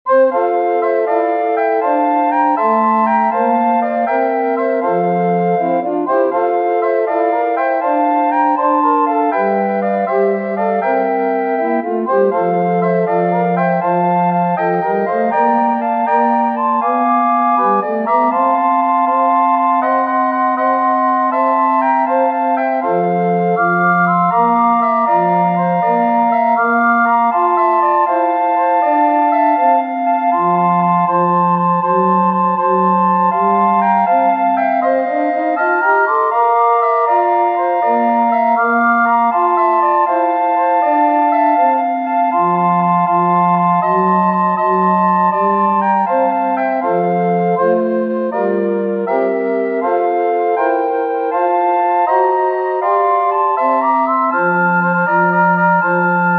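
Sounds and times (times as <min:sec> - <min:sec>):
recorder quartet playing: 0:00.1 - 0:56.3.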